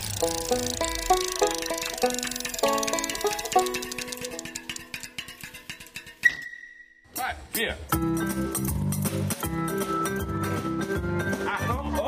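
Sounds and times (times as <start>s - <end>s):
bass guitar playing a deep bass line: 0.1s - 4.7s, 7.9s - 12.0s
compressed-air metal piano notes: 0.2s - 6.2s.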